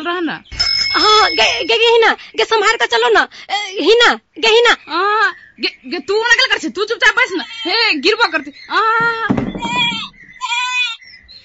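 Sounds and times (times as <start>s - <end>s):
speech: 0.0s - 10.1s
goat bleating: 9.6s - 11.0s.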